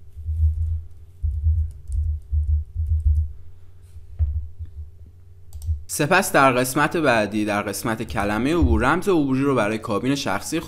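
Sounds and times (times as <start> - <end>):
keyboard typing of an email address into a website sign-up form: 0.2 - 3.3, 5.5 - 5.9
speech: 5.9 - 10.6.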